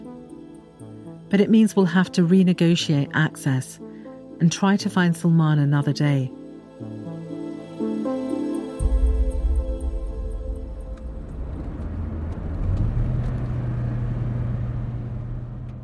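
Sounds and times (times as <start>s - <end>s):
speech: 1.3s - 3.9s, 4.4s - 6.9s
car engine rumble while driving: 9.1s - 15.8s
car road noise: 9.8s - 15.8s.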